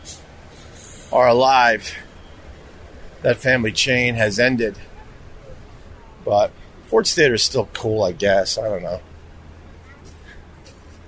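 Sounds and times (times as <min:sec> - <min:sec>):
street traffic rumble at a crossroad: 0:00.0 - 0:11.0
indistinct voices: 0:00.6 - 0:10.4
speech: 0:01.1 - 0:02.0, 0:03.2 - 0:04.9, 0:06.2 - 0:09.1.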